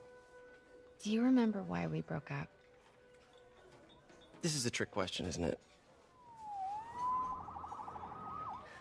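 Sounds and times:
speech: 0:01.0 - 0:02.6, 0:04.4 - 0:05.8
police siren wailing and yelping: 0:06.2 - 0:08.7
low traffic rumble: 0:06.4 - 0:08.7.

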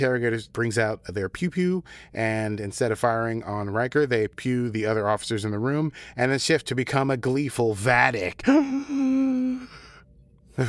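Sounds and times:
speech: 0:00.0 - 0:09.2
person imitating a sharp dramatic gasp: 0:08.5 - 0:10.0.

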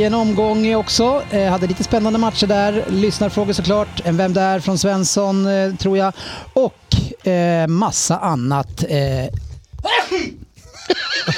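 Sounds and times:
voiced vocal sounds: 0:00.0 - 0:09.4
speech: 0:00.0 - 0:11.3
sneeze: 0:09.9 - 0:10.4
laughter: 0:10.6 - 0:11.3.

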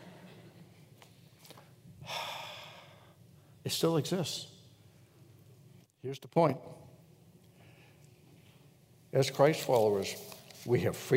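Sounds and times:
sharp breathy gasp: 0:02.0 - 0:03.2
speech: 0:03.7 - 0:04.5, 0:06.0 - 0:06.8, 0:09.2 - 0:11.1.

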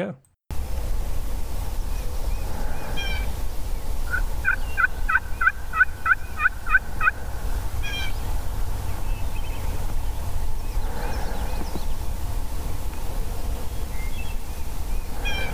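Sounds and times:
speech: 0:00.0 - 0:00.3
steady loud road rumble: 0:00.5 - 0:15.5
wild turkeys gobbling: 0:04.0 - 0:08.4.

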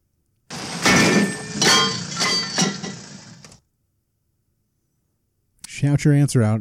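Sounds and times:
heavy brass lawn jockey statue tipped over and crashing: 0:00.5 - 0:03.4
speech: 0:05.8 - 0:06.5.

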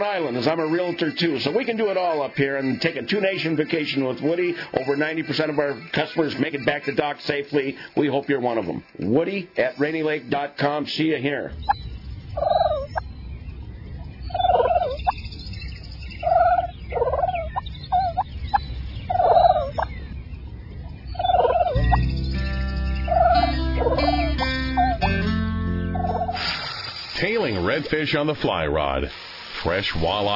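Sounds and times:
wild turkeys gobbling: 0:00.0 - 0:07.8, 0:11.6 - 0:13.1, 0:13.9 - 0:15.2, 0:16.2 - 0:20.1, 0:20.8 - 0:22.1, 0:23.0 - 0:25.1, 0:25.9 - 0:26.5
speech: 0:00.0 - 0:11.7, 0:27.9 - 0:30.3
steady music: 0:21.2 - 0:27.2.

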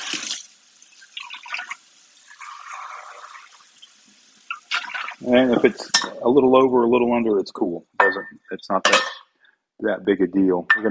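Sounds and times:
water poured into a 6-quart pot: 0:00.0 - 0:06.1
speech: 0:05.2 - 0:09.2, 0:09.8 - 0:10.8.

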